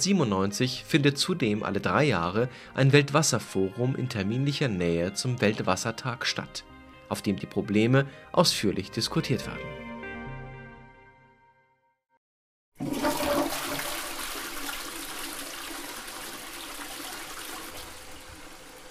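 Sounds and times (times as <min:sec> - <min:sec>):
speech: 0:00.0 - 0:09.8
toilet flushing: 0:12.8 - 0:18.8.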